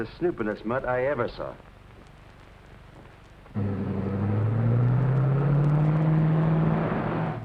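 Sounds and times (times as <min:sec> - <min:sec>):
speech: 0:00.0 - 0:01.7
car engine starting and running: 0:03.5 - 0:07.4.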